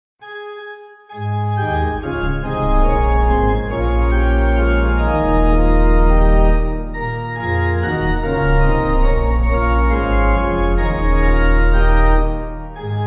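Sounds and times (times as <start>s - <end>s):
pipe organ hymn backing: 1.1s - 13.0s.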